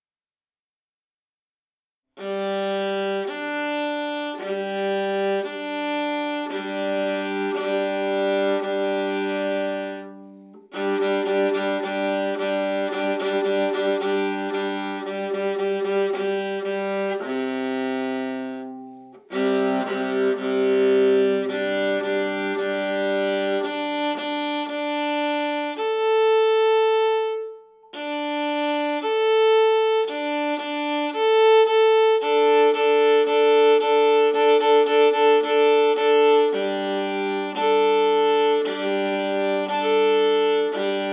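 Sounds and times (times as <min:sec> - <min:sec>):
viola improvising with double stops: 0:02.2 - 0:41.1.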